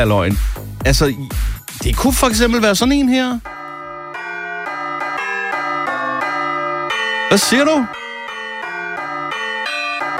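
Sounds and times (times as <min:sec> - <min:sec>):
speech: 0:00.0 - 0:03.6, 0:07.4 - 0:08.1
bright electronic bell chime ringtone melody: 0:03.4 - 0:10.1.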